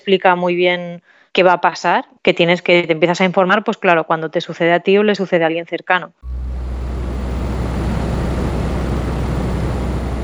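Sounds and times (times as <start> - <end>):
speech: 0.0 - 6.5
office air conditioner humming with broadband hiss: 6.2 - 10.2.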